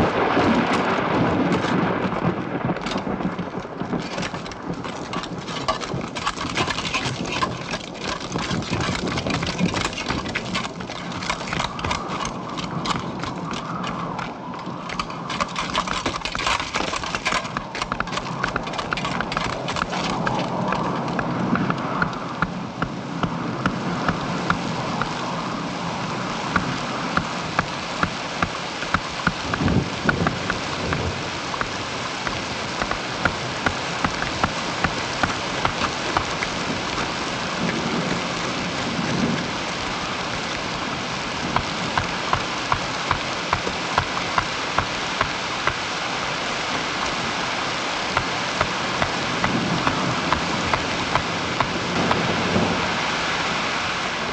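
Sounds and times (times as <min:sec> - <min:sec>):
rain: 0:00.0 - 0:54.3
wind: 0:00.0 - 0:54.3
men hammering tent stakes: 0:04.1 - 0:14.2, 0:14.9 - 0:23.4, 0:27.2 - 0:36.5, 0:41.6 - 0:45.9, 0:48.1 - 0:52.3.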